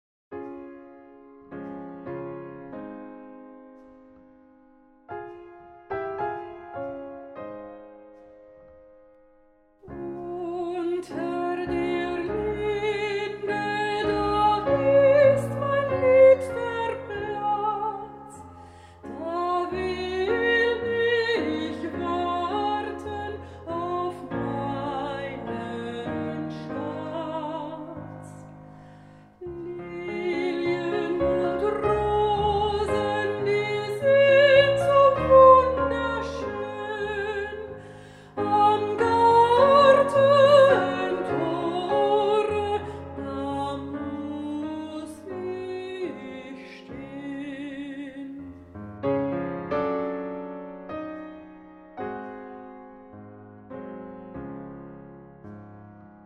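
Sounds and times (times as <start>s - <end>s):
piano in romantic style: 0.3s - 56.2s
person singing in romantic style: 9.8s - 28.5s, 29.4s - 48.6s.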